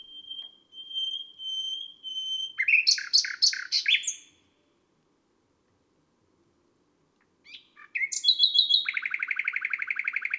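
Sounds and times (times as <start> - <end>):
common nightingale singing: 0.0 - 4.3, 7.5 - 10.3.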